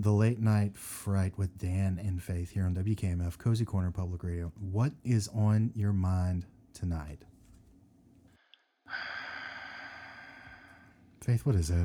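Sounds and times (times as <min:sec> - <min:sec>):
speech: 0:00.0 - 0:07.3, 0:11.2 - 0:11.8
heavy rasping breathing over a phone line: 0:08.9 - 0:11.0.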